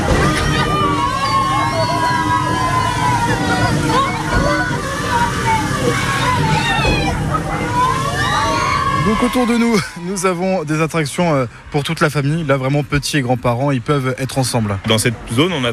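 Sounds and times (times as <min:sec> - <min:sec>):
excited shouts: 0:00.0 - 0:10.5
water cannons spraying a boat ride at an amusement park: 0:00.0 - 0:11.7
busy crowd's voices at an amusement park: 0:00.0 - 0:15.7
speech: 0:09.1 - 0:15.7.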